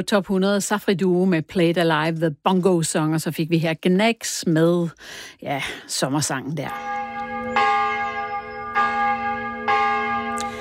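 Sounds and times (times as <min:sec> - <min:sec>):
speech: 0:00.0 - 0:07.0
church bell ringing: 0:06.6 - 0:10.5.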